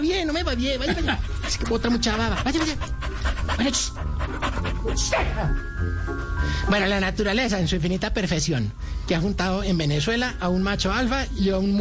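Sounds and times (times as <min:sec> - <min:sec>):
speech: 0:00.0 - 0:11.7
dog panting: 0:00.3 - 0:06.4.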